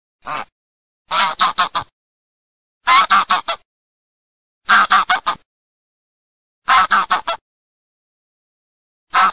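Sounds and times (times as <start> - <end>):
wild goose calling: 1.1 - 1.9, 2.9 - 3.6, 4.7 - 5.4, 6.7 - 7.4, 9.1 - 9.3.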